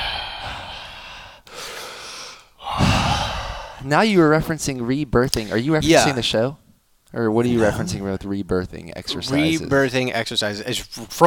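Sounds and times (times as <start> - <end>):
breath rushing against a microphone: 0.0 - 3.9
speech: 3.8 - 11.2.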